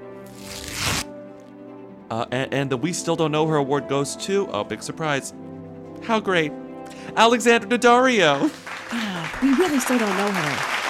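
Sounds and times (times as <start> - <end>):
paper award envelope crinkling and rustling: 0.2 - 1.1
speech: 2.1 - 10.7.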